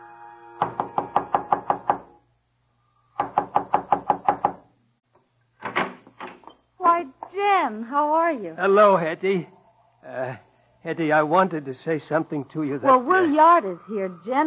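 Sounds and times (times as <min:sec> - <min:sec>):
quick knocks on a door: 0:00.6 - 0:02.1, 0:03.2 - 0:04.6
speech: 0:07.7 - 0:14.4.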